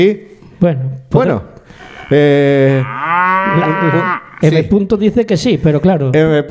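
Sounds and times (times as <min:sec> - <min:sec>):
speech: 0:00.0 - 0:06.4
Galician cow mooing: 0:01.7 - 0:04.6.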